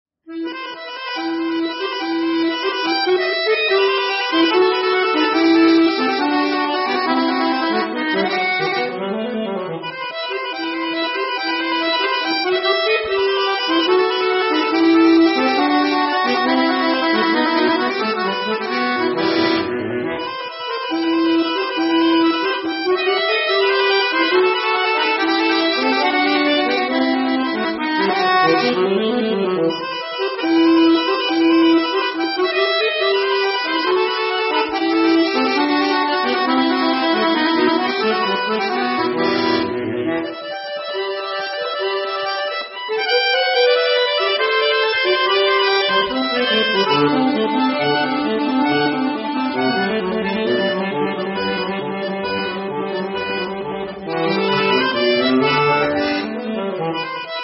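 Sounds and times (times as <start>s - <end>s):
bayan accordion: 0.3s - 57.4s.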